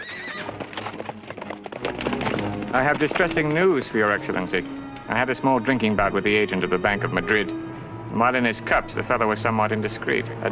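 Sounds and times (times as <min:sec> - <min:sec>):
horse drawing a carriage whinnying: 0:00.0 - 0:03.5
hoofbeats of a horse drawing a carriage: 0:00.0 - 0:05.3
speech: 0:02.7 - 0:10.5.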